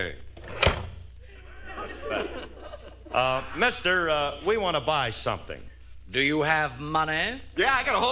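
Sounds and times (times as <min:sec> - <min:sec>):
speech: 0:00.0 - 0:00.2, 0:03.2 - 0:08.1
cash register drawer slamming shut: 0:00.4 - 0:01.0
laughter: 0:01.2 - 0:03.9.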